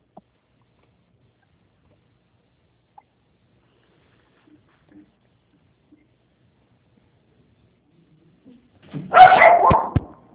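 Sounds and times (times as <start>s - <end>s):
small dogs yapping in excited barking: 9.1s - 10.1s.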